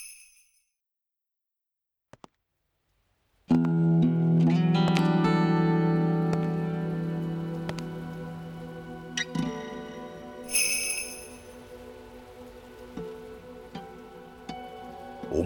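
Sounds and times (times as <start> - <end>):
heavy rain falling all around: 3.5 - 15.4
bright brief chime: 10.5 - 11.6.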